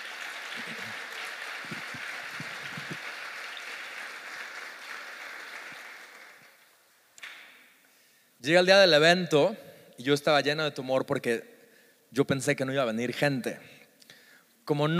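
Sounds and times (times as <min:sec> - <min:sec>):
crowd applauding: 0:00.0 - 0:06.8
speech: 0:08.4 - 0:11.5, 0:12.1 - 0:13.8, 0:14.7 - 0:14.9.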